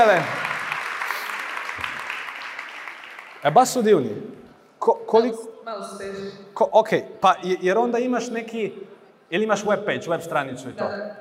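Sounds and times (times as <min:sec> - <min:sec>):
speech: 0:00.0 - 0:00.4, 0:03.4 - 0:11.2
audience applause: 0:00.0 - 0:03.8.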